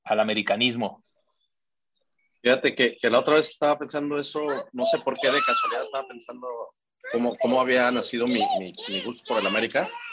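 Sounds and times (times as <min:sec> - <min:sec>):
adult talking: 0:00.0 - 0:01.1, 0:02.4 - 0:10.1
speech: 0:00.1 - 0:01.1, 0:02.4 - 0:10.1
young child chattering and squealing in a high voice: 0:04.4 - 0:10.1.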